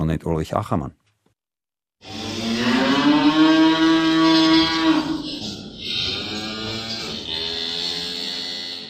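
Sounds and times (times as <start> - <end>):
speech: 0.1 - 1.0
cows mooing: 2.0 - 8.8.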